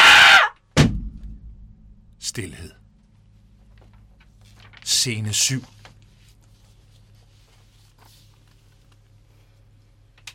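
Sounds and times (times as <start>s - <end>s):
loud shrill scream: 0.0s - 0.6s
sharp impact: 0.8s - 2.2s
low rumbling tail of an impact: 0.8s - 4.1s
speech: 2.4s - 2.8s, 5.0s - 5.8s.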